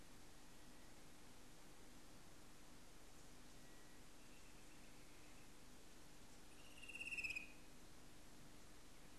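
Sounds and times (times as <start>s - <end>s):
low background noise: 0.0s - 9.1s
fan-tailed cuckoo giving a high quavering trill: 6.6s - 7.6s.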